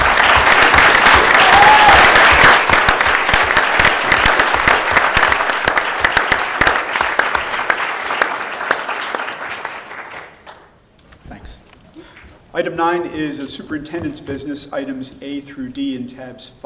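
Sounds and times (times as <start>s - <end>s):
audience applause at a school board meeting: 0.0s - 10.7s
speech: 12.8s - 16.6s.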